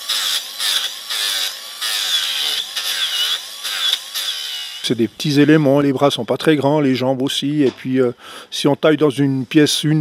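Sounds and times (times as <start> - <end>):
chainsaw cutting into wood while carving a wooden sculpture: 0.0 - 4.9
speech: 4.8 - 9.9.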